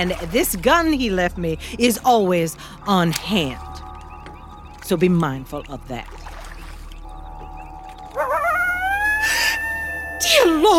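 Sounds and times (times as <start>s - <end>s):
speech: 0.0s - 3.9s, 4.9s - 6.3s
coyote howl rising from a wavering yip: 8.0s - 10.7s.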